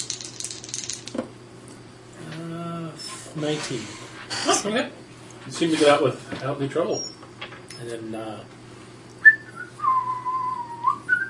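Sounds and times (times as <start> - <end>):
speech: 3.4 - 7.2, 7.8 - 8.6
person whistling a short tune: 9.2 - 11.2.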